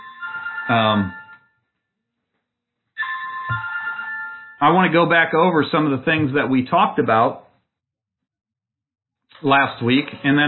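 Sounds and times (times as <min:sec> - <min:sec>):
mobile phone ringtone playing a bright electronic melody: 0:00.0 - 0:01.7, 0:03.0 - 0:05.0
speech: 0:00.7 - 0:01.2, 0:04.6 - 0:07.4, 0:09.4 - 0:10.4.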